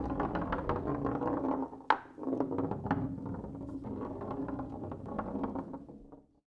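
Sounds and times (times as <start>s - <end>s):
foosball ball rolling: 0.0s - 6.3s.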